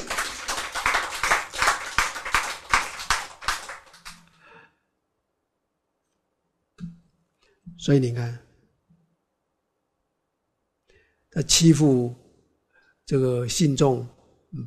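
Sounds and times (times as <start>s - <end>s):
audience clapping: 0.0s - 4.4s
speech: 7.8s - 8.4s, 11.4s - 12.2s, 13.1s - 14.6s.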